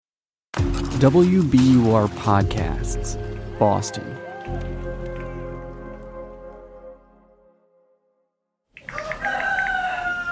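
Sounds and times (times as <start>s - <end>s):
speech: 1.0s - 4.8s
rooster crowing: 8.8s - 10.3s.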